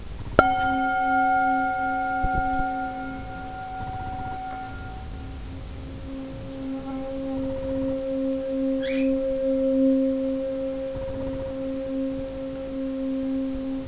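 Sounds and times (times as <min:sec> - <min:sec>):
singing bowls: 0:00.0 - 0:13.8.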